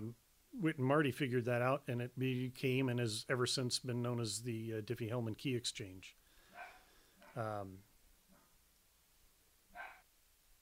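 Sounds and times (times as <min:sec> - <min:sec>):
speech: 0:00.0 - 0:06.2, 0:07.4 - 0:07.9
dog barking and yipping: 0:06.5 - 0:07.4, 0:09.7 - 0:10.1.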